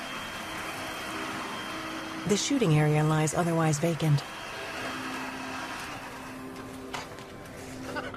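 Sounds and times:
vacuum cleaner running on carpet: 0:00.0 - 0:07.9
speech: 0:02.2 - 0:04.4.

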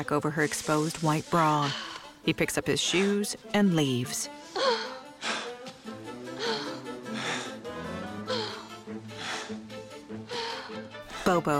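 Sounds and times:
speech: 0:00.0 - 0:04.8, 0:11.3 - 0:11.5
woman lying in a hearth panting heavily: 0:01.6 - 0:02.2, 0:04.3 - 0:11.4.

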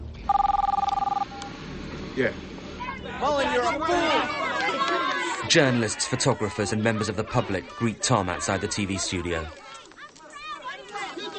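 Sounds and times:
telephone line tone: 0:00.3 - 0:01.5
speech: 0:02.2 - 0:02.6, 0:03.2 - 0:09.6
laughter: 0:03.3 - 0:09.3.

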